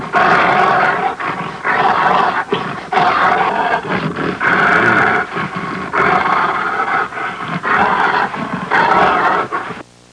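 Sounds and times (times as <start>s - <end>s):
grunting: 0.0s - 9.8s
roaring: 0.0s - 9.8s.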